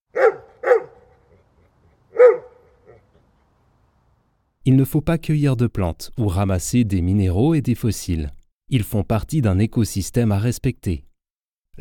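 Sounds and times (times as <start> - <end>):
dog barking: 0.1 - 3.2
speech: 4.7 - 11.1.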